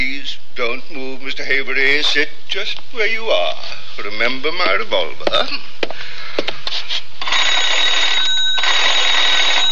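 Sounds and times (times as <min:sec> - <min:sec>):
speech: 0:00.6 - 0:06.0
old telephone bell ringing to call the operator: 0:07.2 - 0:09.7.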